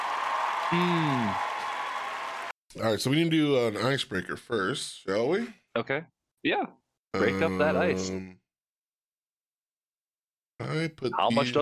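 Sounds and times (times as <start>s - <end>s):
single falling crowd cheer: 0.0s - 2.6s
steady crowd applause: 0.0s - 2.6s
speech: 0.7s - 1.5s, 2.8s - 8.4s, 10.6s - 11.6s.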